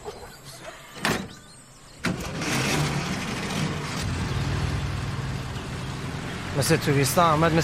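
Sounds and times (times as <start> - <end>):
car engine turning over and rumbling as the vehicle pulls away: 2.1 - 7.6
speech: 6.6 - 7.6.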